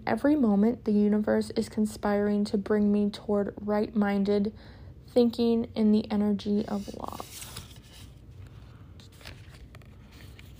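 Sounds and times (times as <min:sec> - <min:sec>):
speech: 0:00.0 - 0:07.4
deck of oracle cards being shuffled: 0:06.5 - 0:10.5.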